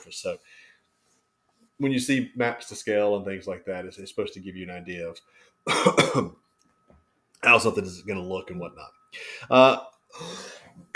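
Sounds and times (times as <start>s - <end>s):
speech: 0.0s - 0.7s, 1.8s - 6.4s, 7.4s - 10.9s
person with a cold coughing: 5.6s - 6.4s.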